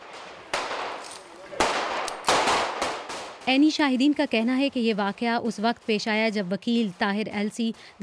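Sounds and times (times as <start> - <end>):
gunshots with echo: 0.0 - 3.5
speech: 3.5 - 8.0.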